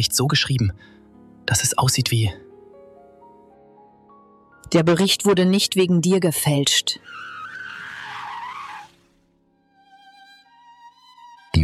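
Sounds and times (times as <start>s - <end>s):
speech: 0.0s - 2.5s, 4.7s - 7.4s
tires squealing on a braking car: 7.0s - 9.3s.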